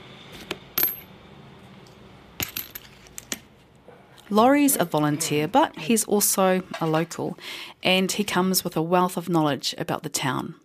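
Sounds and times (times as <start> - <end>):
coins clinking and rattling in a desk drawer: 0.8 - 1.1, 2.4 - 3.2
speech: 4.3 - 10.6.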